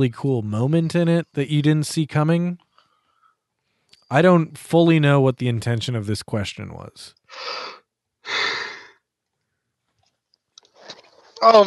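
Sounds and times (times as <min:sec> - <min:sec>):
speech: 0:00.0 - 0:02.6, 0:04.1 - 0:08.6, 0:11.4 - 0:11.6
person yawning: 0:07.4 - 0:08.9.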